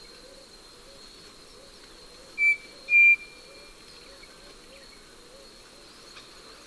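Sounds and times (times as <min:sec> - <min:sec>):
steady high insect drone: 0:00.0 - 0:06.6
Striped cuckoo Tapera naevia giving two-note whistled call: 0:01.6 - 0:05.5.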